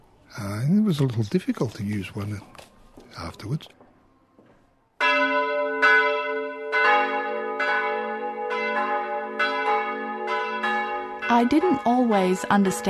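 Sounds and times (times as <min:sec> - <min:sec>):
speech: 0:00.4 - 0:03.8, 0:11.3 - 0:12.8
Angelus church bell ringing: 0:05.0 - 0:12.8.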